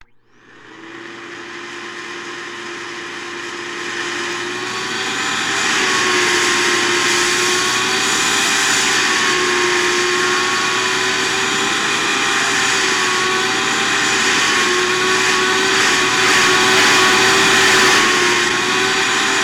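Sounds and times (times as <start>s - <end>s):
vacuum cleaner running constantly: 0.0s - 19.4s.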